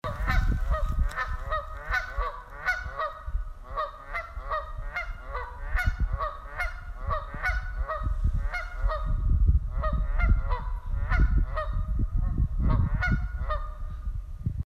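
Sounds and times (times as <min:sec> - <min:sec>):
Canada goose: 0:00.0 - 0:13.9.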